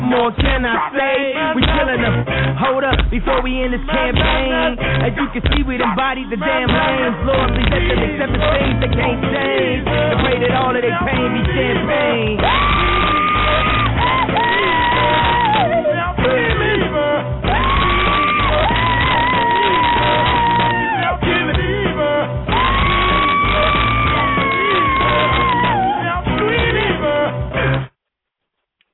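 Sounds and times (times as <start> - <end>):
rap song with loud dense music track: 0.0 - 27.6
speech: 0.1 - 14.2
man screaming and yelling in long strained cries: 12.4 - 16.7, 17.5 - 21.2, 22.5 - 26.0.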